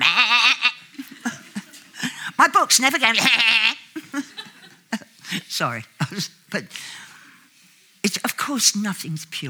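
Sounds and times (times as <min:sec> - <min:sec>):
person imitating a hill sheep's bleat: 0:00.0 - 0:00.8, 0:02.9 - 0:03.9
laughter: 0:00.9 - 0:02.2, 0:04.0 - 0:05.4
speech: 0:02.4 - 0:04.3, 0:05.6 - 0:06.9, 0:08.5 - 0:09.4.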